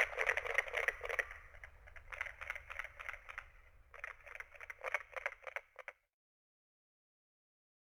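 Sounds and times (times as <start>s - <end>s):
carpenter frog calling: 0.0s - 5.9s.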